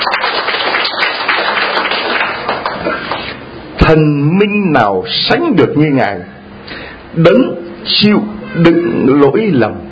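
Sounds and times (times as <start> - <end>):
crowd applause: 0.0 - 3.4
speech: 3.9 - 9.8.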